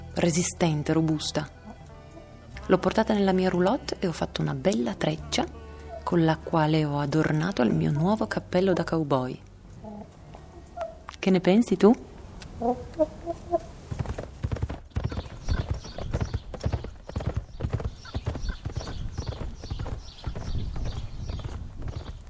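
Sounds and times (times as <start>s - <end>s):
speech: 0.2s - 1.6s, 2.7s - 9.4s, 11.2s - 13.7s
chickens clucking: 12.6s - 13.8s
horse hooves clip-clopping while riding out from a ranch: 13.6s - 22.2s.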